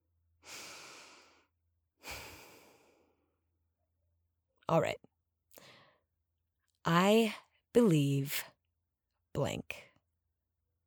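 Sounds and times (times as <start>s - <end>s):
deep breath taken together: 0.4s - 3.3s, 5.6s - 6.0s
speech: 4.7s - 5.1s, 6.8s - 8.5s, 9.4s - 9.9s.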